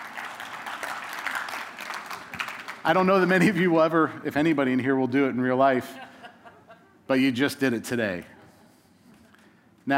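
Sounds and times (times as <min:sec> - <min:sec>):
large audience applause: 0:00.0 - 0:02.8
speech: 0:02.8 - 0:06.1, 0:07.1 - 0:08.4.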